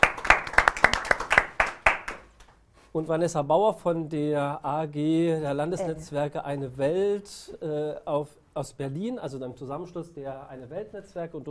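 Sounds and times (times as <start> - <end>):
audience applause at a public event: 0.0 - 2.2
speech: 2.9 - 11.4.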